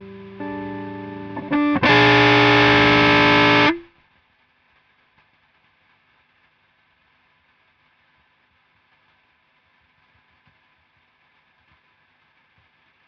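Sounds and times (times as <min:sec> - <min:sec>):
guitar with effects: 0:00.0 - 0:03.9.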